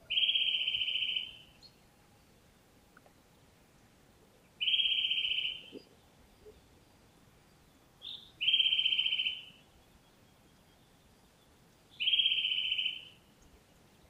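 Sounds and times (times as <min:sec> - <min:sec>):
Eurasian nuthatch trilling: 0:00.0 - 0:01.4, 0:04.6 - 0:05.9, 0:08.0 - 0:09.5, 0:12.0 - 0:13.1.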